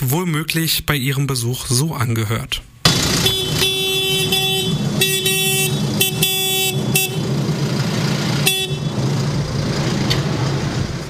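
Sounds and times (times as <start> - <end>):
speech: 0.0 - 3.4
tractor horns blaring at a protest: 2.8 - 10.1
low engine rumble of a tractor convoy: 2.9 - 11.0.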